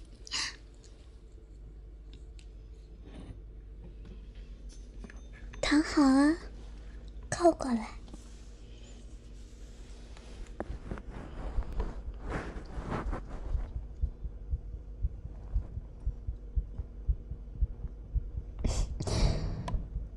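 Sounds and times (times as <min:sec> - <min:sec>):
speech: 0:05.7 - 0:06.5, 0:07.4 - 0:08.0
soft rustling of fabric or movement: 0:08.2 - 0:14.0
rapid heartbeat: 0:11.6 - 0:20.1.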